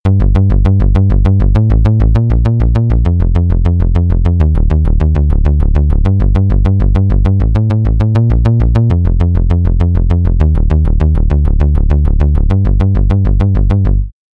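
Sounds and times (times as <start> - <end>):
synth bass: 0.0 - 14.1.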